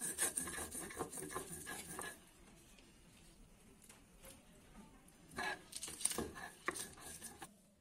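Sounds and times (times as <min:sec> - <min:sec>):
grinding cumin, ginger and chili spices into a paste: 0:00.0 - 0:02.2, 0:05.4 - 0:07.5.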